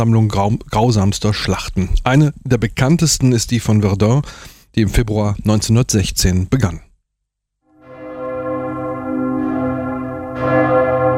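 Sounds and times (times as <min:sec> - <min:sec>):
speech: 0:00.0 - 0:06.9
Victory Bell ringing from the 46-metre tower of the Douaumont Ossuary memorial at Verdun: 0:07.7 - 0:11.1.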